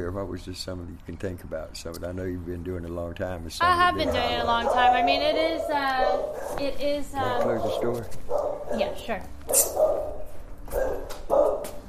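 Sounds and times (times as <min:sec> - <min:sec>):
speech: 0:00.0 - 0:09.9
dog barking: 0:04.0 - 0:11.8.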